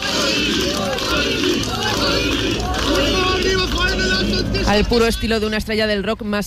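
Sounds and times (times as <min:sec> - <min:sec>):
crowd of supporters cheering and shouting: 0:00.0 - 0:05.1
speech: 0:04.7 - 0:06.4.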